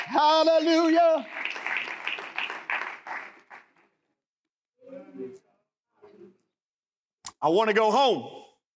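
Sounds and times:
audience clapping hands: 0.0s - 4.0s
speech: 0.1s - 1.4s, 7.4s - 8.4s.

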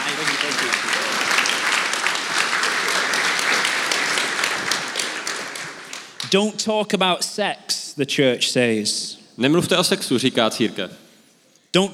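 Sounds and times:
audience applause: 0.0s - 6.3s
speech: 6.3s - 11.0s, 11.7s - 11.9s.

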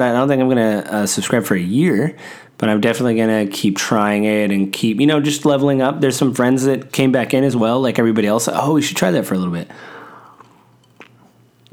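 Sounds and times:
speech: 0.0s - 9.9s
faint steady hum: 0.0s - 11.7s
person sipping water: 10.1s - 11.7s.

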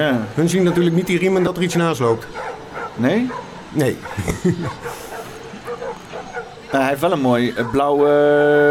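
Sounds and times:
speech: 0.0s - 5.0s, 6.7s - 8.6s
dog barking short yappy barks: 0.6s - 6.8s, 7.5s - 8.0s
laughter: 3.8s - 5.8s.

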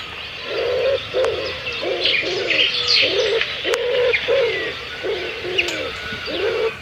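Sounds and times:
small birds chirping and twittering: 0.0s - 6.7s
common wood pigeon cooing: 0.4s - 6.7s.

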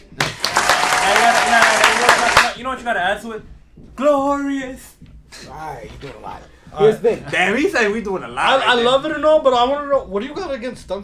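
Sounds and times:
applause sound effect: 0.0s - 2.6s
speech: 2.6s - 11.0s.

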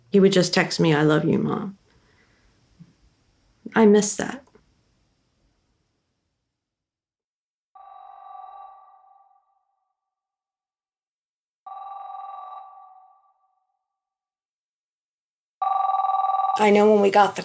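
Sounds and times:
speech: 0.1s - 1.8s, 3.7s - 4.5s, 16.6s - 17.4s
house telephone ringing with electronic trill: 7.8s - 10.0s, 11.6s - 13.7s, 15.6s - 17.4s.

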